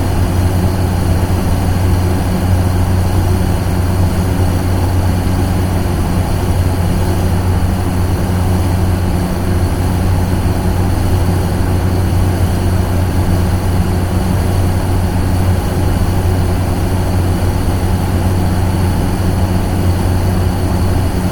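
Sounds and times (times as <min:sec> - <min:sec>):
boiler room machinery: 0:00.0 - 0:21.3.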